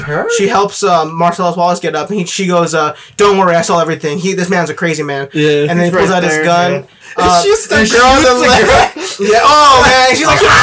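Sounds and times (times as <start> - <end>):
speech: 0.1 - 10.6
voice mimicking screaming in agonizing pain: 8.5 - 10.6.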